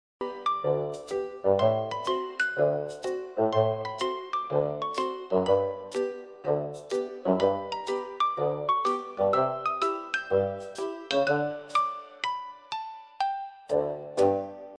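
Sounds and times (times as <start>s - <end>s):
homepage background music: 0.2s - 14.7s.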